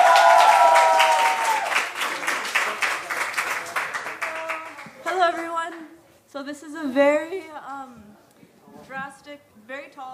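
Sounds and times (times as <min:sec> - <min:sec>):
audience applause: 0:00.0 - 0:05.4
speech: 0:06.5 - 0:10.1.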